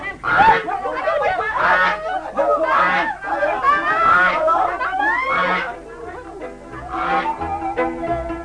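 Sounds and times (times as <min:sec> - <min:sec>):
goose honking as it is being caught: 0:00.2 - 0:00.7, 0:01.6 - 0:05.8, 0:06.8 - 0:08.2
laughter: 0:00.3 - 0:08.3.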